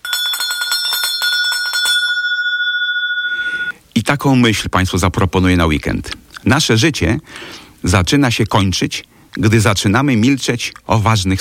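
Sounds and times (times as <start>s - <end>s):
small bell ringing: 0.0s - 3.7s
speech: 4.1s - 11.3s.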